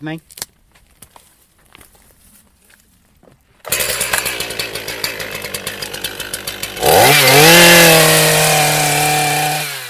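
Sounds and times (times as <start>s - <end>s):
chainsaw cutting the heel off a hazel stem during hedge laying: 3.6s - 9.8s.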